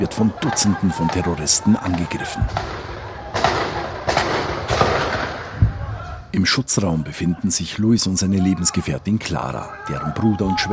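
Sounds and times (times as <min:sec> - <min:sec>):
speech: 0:00.0 - 0:03.0, 0:06.3 - 0:10.7
missile interceptor detonations: 0:02.2 - 0:06.3.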